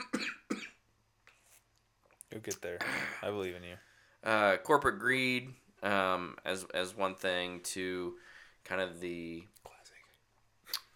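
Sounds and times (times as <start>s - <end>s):
person coughing: 0.0s - 0.8s, 2.8s - 3.2s
speech: 2.3s - 9.6s.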